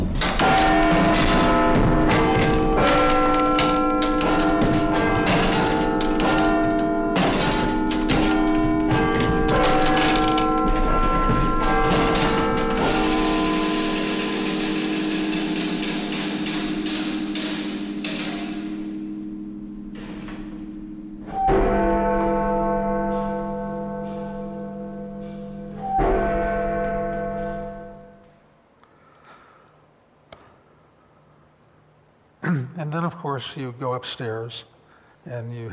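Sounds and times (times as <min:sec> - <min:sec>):
clock tower bells ringing: 0:00.2 - 0:28.2
speech: 0:33.2 - 0:34.7, 0:35.3 - 0:35.7.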